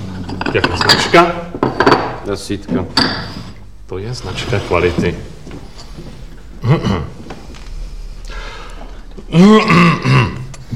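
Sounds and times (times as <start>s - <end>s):
faint noise: 0.0s - 10.7s
speech: 0.3s - 5.3s, 6.6s - 7.2s, 9.4s - 10.3s
person clearing throat with gruff rasping coughs: 6.6s - 7.2s, 9.3s - 10.5s.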